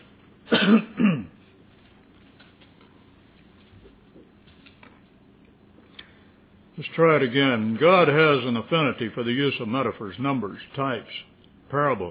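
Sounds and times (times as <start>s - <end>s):
person clearing throat: 0.5s - 1.4s
speech: 0.7s - 1.3s, 7.0s - 12.0s.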